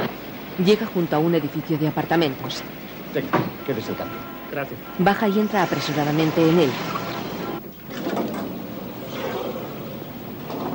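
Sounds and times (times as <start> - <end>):
speech: 0.6 - 7.0
elevator doors sliding open with mechanical rumble and hiss: 3.1 - 10.7.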